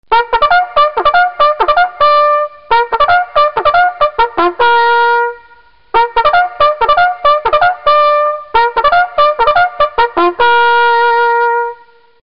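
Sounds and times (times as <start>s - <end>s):
bugle call: 0.1s - 12.0s.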